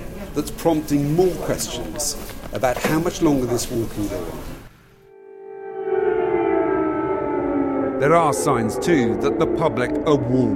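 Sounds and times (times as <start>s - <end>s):
speech: 0.4s - 4.5s, 8.0s - 10.5s
air raid siren in Dnipro during wartime: 5.0s - 10.5s.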